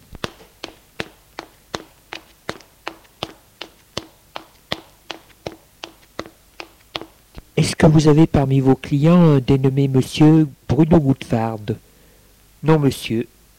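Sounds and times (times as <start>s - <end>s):
footsteps of two people climbing stairs in a hotel: 0.0s - 7.4s
speech: 7.8s - 11.9s, 12.6s - 13.4s.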